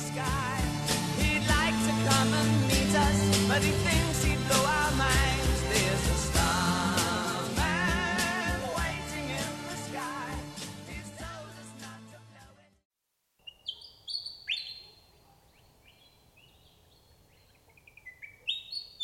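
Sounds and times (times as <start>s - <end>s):
soft outdoor background: 0.0s - 19.0s
willie wagtail singing chirping phrases: 13.4s - 19.0s.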